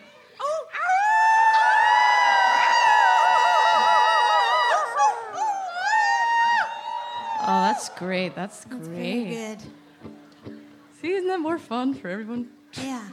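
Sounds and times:
audience howling together like wolves: 0.8s - 10.0s
speech: 8.0s - 10.2s, 11.0s - 13.1s.

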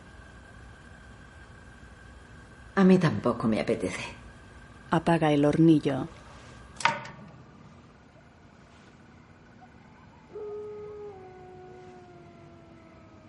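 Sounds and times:
quiet hissy background: 0.0s - 13.2s
speech: 2.8s - 4.2s, 4.9s - 6.2s
pack of wolves howling in a ravine: 9.5s - 13.2s.

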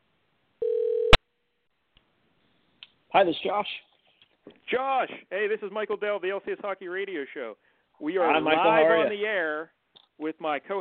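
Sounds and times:
telephone line ringing after a call is dialed: 0.6s - 1.2s
speech: 3.1s - 3.9s, 4.5s - 10.7s.

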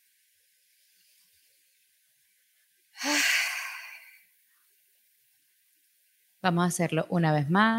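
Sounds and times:
deep breath in and out: 3.0s - 4.2s
speech: 6.4s - 7.7s.

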